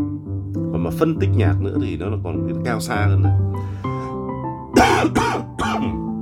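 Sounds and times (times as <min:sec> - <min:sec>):
speech: 0:00.8 - 0:04.0, 0:04.8 - 0:06.0
coughing: 0:04.8 - 0:06.0.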